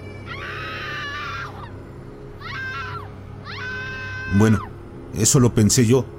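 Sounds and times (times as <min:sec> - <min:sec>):
eerie unearthly supernatural screams: 0:00.3 - 0:01.8, 0:02.4 - 0:04.8
speech: 0:04.3 - 0:06.1.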